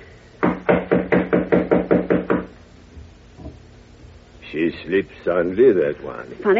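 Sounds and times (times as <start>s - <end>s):
firm knocks on a wooden door: 0.4s - 2.5s
speech: 4.6s - 6.5s.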